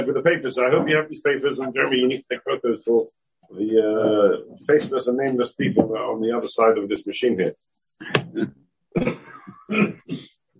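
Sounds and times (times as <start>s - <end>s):
speech: 0.0s - 10.4s
person clearing throat: 8.0s - 10.3s
person coughing harshly: 8.0s - 10.3s.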